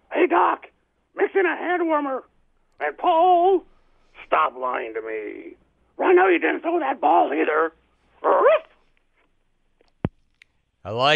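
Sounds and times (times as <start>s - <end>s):
speech: 0.3s - 8.7s, 10.8s - 11.1s
dog barking: 8.2s - 8.8s.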